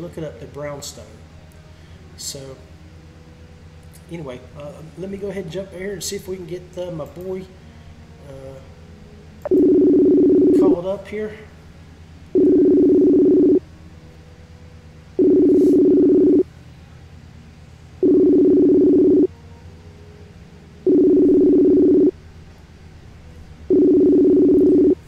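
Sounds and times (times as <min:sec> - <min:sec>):
speech: 0:00.0 - 0:01.3, 0:02.2 - 0:02.7, 0:04.1 - 0:07.6, 0:08.3 - 0:08.7, 0:10.6 - 0:11.5
outgoing phone call electronic ring tones: 0:09.5 - 0:10.7, 0:12.4 - 0:13.6, 0:15.2 - 0:16.4, 0:18.0 - 0:19.3, 0:20.9 - 0:22.1, 0:23.7 - 0:25.0.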